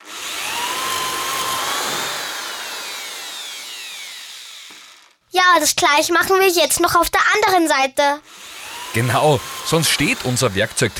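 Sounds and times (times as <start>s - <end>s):
power drill boring pilot holes into wood: 0.0s - 5.2s, 8.2s - 10.9s
speech: 5.4s - 10.9s.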